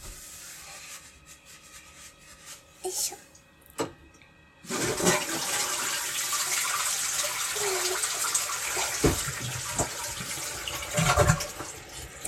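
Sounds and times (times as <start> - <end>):
speech: 2.8 - 3.3
toilet flushing: 4.6 - 12.2.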